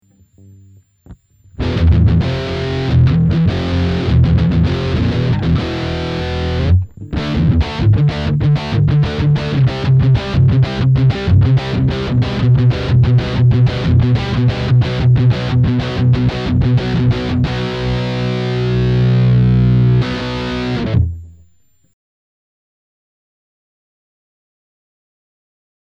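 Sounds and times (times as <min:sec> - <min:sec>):
electric guitar riff at maximum gain through headphone guitar amplifier: 0:01.4 - 0:21.6.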